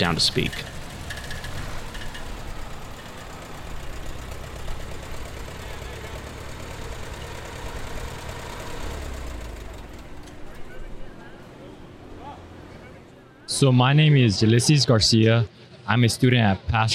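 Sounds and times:
speech: 0.0s - 0.7s, 13.6s - 16.9s
tractor engine idling in a procession down a midway: 0.0s - 13.5s
indistinct crowd voices: 9.5s - 16.8s.

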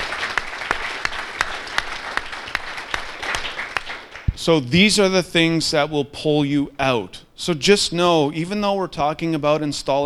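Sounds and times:
audience applause for speaker's wife: 0.0s - 4.3s
speech: 4.4s - 10.0s.

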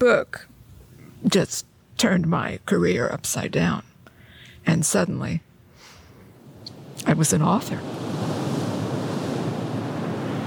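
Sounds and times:
speech: 0.0s - 0.6s, 1.2s - 3.9s, 4.6s - 5.5s, 7.0s - 8.2s
windy hiss: 5.7s - 10.4s
Atlantic Ocean waves washing onto a beach at East Hampton: 6.4s - 10.4s.

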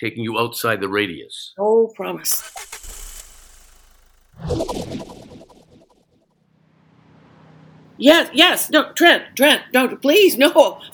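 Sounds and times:
speech: 0.0s - 2.8s, 4.4s - 5.2s, 8.0s - 10.9s
engine revving: 2.2s - 8.1s.

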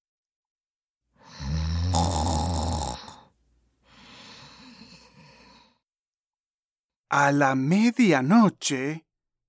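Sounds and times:
woman asleep in her bed snoring: 1.2s - 3.3s, 4.2s - 5.8s
speech: 7.1s - 9.1s.

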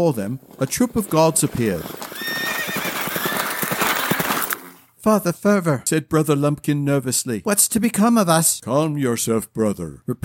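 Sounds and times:
speech: 0.0s - 2.1s, 5.0s - 10.2s
horses galloping: 0.0s - 4.8s
horse whinnying: 1.0s - 4.9s.

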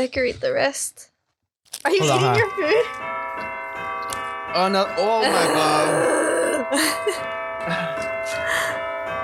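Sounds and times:
speech: 0.0s - 1.1s, 1.7s - 3.2s, 4.5s - 8.7s
church bells ringing: 2.0s - 9.2s.

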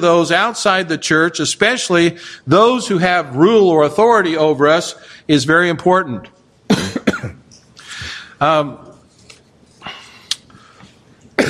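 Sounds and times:
speech: 0.0s - 6.4s, 8.4s - 8.9s
man coughing and clearing throat: 6.7s - 7.4s.

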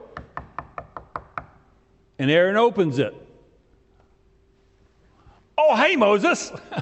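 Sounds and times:
knocking on a door: 0.1s - 1.6s
speech: 2.2s - 3.2s, 5.9s - 6.8s.

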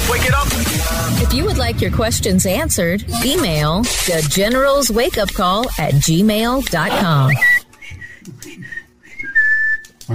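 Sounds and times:
speech: 0.2s - 7.5s
person whistling a tune: 7.3s - 10.0s.

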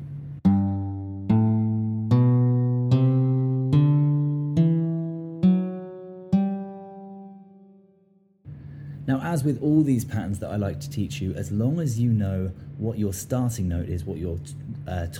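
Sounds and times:
plucked guitar notes in a major scale pattern from G on the sixth string: 0.0s - 8.8s
speech: 9.2s - 15.1s.

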